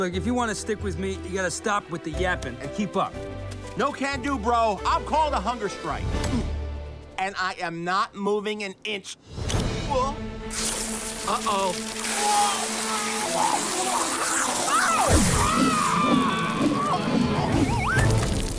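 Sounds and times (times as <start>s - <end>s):
speech: 0.0s - 6.5s, 7.2s - 13.7s
water sprinkler spraying on the grass: 10.5s - 16.5s
cartoonish sound effects: 10.6s - 18.4s
squeaky voices: 13.0s - 18.1s.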